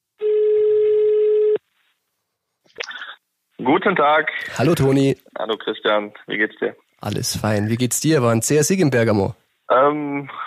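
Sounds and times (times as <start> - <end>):
buzzing telephone call tone on an outgoing call: 0.2 - 1.6
speech: 3.6 - 10.4.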